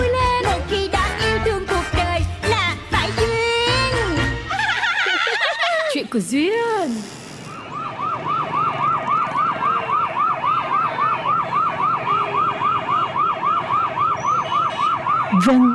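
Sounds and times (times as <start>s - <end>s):
low rumble of street traffic: 0.0s - 15.7s
laughter: 4.5s - 6.1s
speech: 6.1s - 7.2s, 15.4s - 15.7s
ambulance siren wailing down the street: 7.5s - 15.7s.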